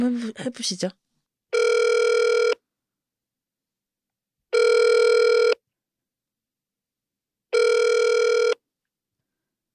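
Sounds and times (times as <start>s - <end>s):
speech: 0.0s - 1.6s
telephone line ringback buzzing tone: 1.5s - 2.6s, 4.5s - 5.6s, 7.5s - 8.6s.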